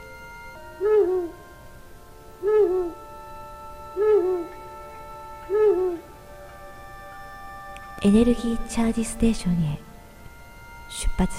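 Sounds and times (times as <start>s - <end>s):
faint steady hum: 0.0s - 11.3s
owl hooting: 0.7s - 1.4s, 2.4s - 6.3s
speech: 8.0s - 9.9s, 11.0s - 11.3s.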